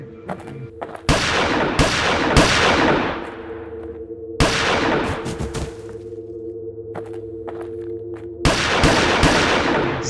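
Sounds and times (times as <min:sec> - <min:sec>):
steady low hum: 0:00.0 - 0:10.0
loud 9 mm gunshots: 0:01.1 - 0:03.4, 0:04.4 - 0:05.8, 0:08.4 - 0:10.0.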